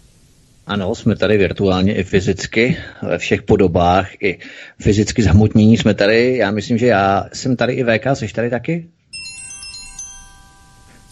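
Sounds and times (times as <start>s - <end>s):
speech: 0.7s - 9.0s
telephone ringing with a bright electronic tone: 9.1s - 11.0s.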